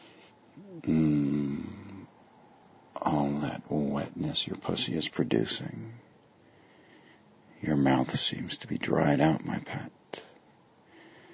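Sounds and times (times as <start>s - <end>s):
heavy voiced raspy breath: 0.0s - 2.1s, 5.9s - 7.4s, 10.8s - 11.3s
speech: 3.7s - 6.0s, 7.6s - 10.2s.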